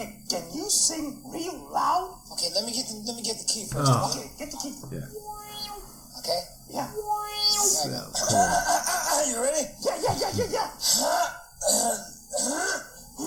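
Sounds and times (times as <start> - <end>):
speech: 0.0 - 5.4, 6.2 - 12.1
person clearing throat in an exaggerated comic way: 10.8 - 13.2.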